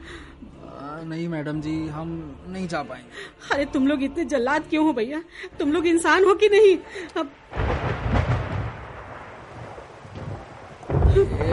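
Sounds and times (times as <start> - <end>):
speech: 1.0 - 7.6
heavy rain pouring on a dark monsoon night in Sawan: 6.9 - 11.5
deep rolls of thunder rumbling: 7.4 - 11.5.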